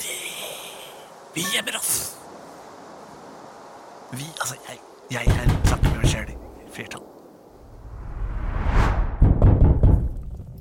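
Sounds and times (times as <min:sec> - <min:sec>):
speech: 0:01.3 - 0:02.2, 0:04.1 - 0:07.2
heavy thudding knocks on a door: 0:05.3 - 0:06.3, 0:09.2 - 0:10.2
rising whoosh: 0:07.6 - 0:09.4.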